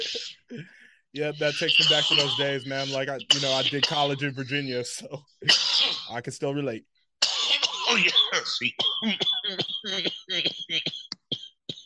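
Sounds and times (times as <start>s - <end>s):
harsh coughing after smoking: 0.0s - 6.2s, 7.2s - 11.8s
speech: 0.0s - 7.0s, 7.9s - 11.1s.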